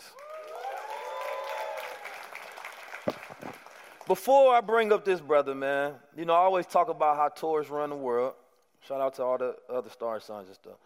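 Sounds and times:
whoops and cheers: 0.0 - 3.1
audience applauding on request: 0.0 - 4.3
speech: 3.1 - 10.8.

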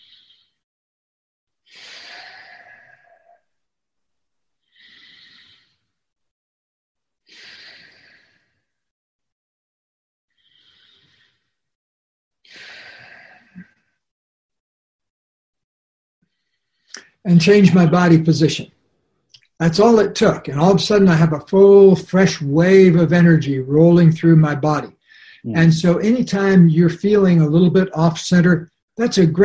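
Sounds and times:
slow deep breaths taken as a demonstration: 1.7 - 3.4, 4.7 - 5.9, 7.3 - 8.8, 10.3 - 11.6, 12.5 - 13.8, 25.0 - 25.7
speech: 17.2 - 18.8, 19.6 - 29.4.

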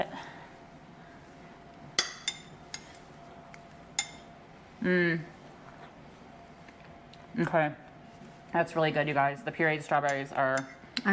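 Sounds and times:
spoon clinking on a dish while serving strawberry shortcake: 2.0 - 2.9, 4.0 - 4.3
speech: 4.8 - 5.4, 7.4 - 7.8, 8.5 - 11.1.

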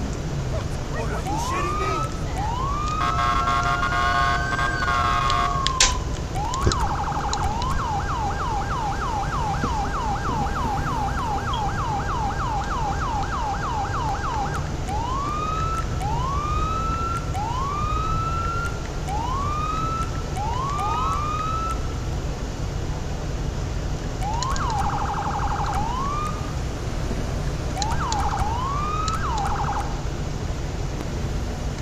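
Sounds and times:
constant rumble of road traffic: 0.0 - 31.8
police car siren wailing and yelping: 0.3 - 22.1, 24.2 - 26.9, 27.6 - 30.3.

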